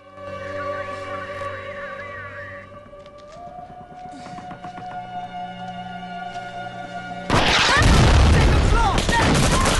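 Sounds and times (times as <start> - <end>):
volley of gunfire: 7.3 - 9.7.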